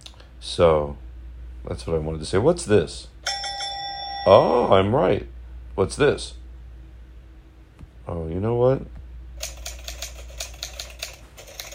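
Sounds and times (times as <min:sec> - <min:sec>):
speech: 0:00.4 - 0:01.0, 0:01.6 - 0:03.4, 0:04.2 - 0:06.4, 0:08.1 - 0:09.0
old typewriter keys clacking: 0:09.4 - 0:11.7.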